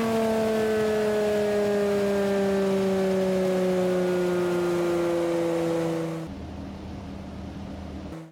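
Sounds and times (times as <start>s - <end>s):
race car slowing down: 0.0s - 8.3s.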